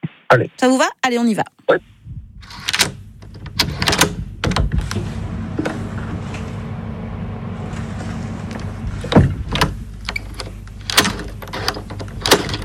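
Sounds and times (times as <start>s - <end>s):
speech: 0.3s - 2.7s
steady low hum: 1.7s - 12.6s
key scraping and turning in a door lock: 2.4s - 5.0s, 9.5s - 12.6s.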